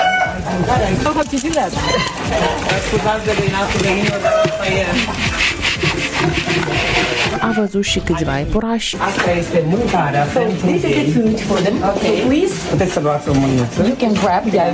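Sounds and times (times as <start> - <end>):
crowd of chickens clucking and squawking: 0.0 - 7.7
speech: 0.6 - 14.7.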